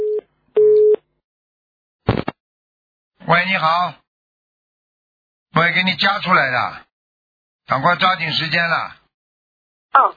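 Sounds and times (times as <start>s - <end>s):
telephone busy tone beeps after dropped call: 0.0s - 1.0s
speech: 3.3s - 4.0s, 5.6s - 6.9s, 7.7s - 9.0s, 9.9s - 10.1s.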